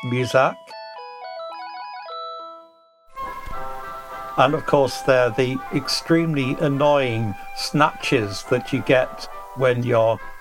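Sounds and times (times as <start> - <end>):
speech: 0.0 - 0.7, 4.4 - 10.3
mobile phone ringtone playing electronic classical melody: 0.0 - 9.5.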